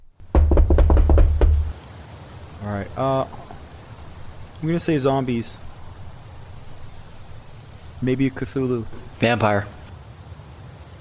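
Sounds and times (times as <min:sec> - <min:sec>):
knocking on a front door: 0:00.3 - 0:01.7
speech: 0:02.6 - 0:03.4, 0:04.6 - 0:05.6, 0:08.0 - 0:09.8.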